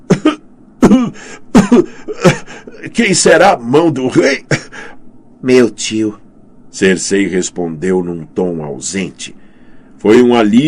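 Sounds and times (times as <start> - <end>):
person acting out a coughing fit: 0.1 - 2.9, 4.3 - 4.8
speech: 1.6 - 2.4, 3.0 - 6.2, 6.8 - 9.4, 10.0 - 10.6.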